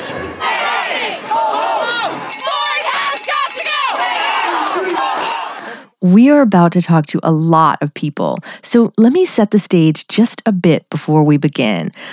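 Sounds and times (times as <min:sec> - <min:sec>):
large outdoor crowd of teachers, parents and students shouting and cheering: 0:00.0 - 0:05.8
speech: 0:06.0 - 0:12.1.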